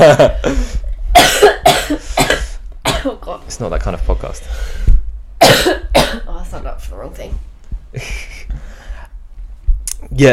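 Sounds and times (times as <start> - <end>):
speech: 0.0 - 1.6, 3.6 - 4.8, 6.9 - 8.3, 10.2 - 10.3
harsh breathy coughing: 1.2 - 3.1, 5.4 - 6.3.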